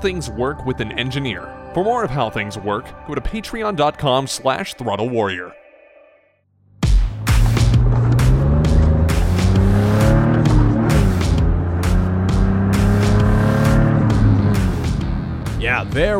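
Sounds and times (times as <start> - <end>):
speech: 0.0 - 5.6, 15.8 - 16.1
car engine revving hard: 7.1 - 16.1.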